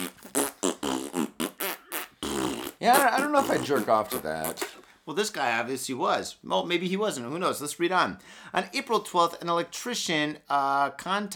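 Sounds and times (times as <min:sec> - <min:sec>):
loud buzzy fart sounds: 0:00.0 - 0:04.8
speech: 0:02.8 - 0:11.3.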